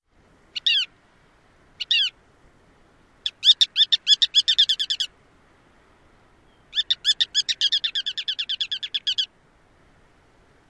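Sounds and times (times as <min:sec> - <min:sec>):
ruddy turnstone calls near nest: 0:00.6 - 0:01.0, 0:01.8 - 0:02.2, 0:03.2 - 0:05.1, 0:06.4 - 0:09.3.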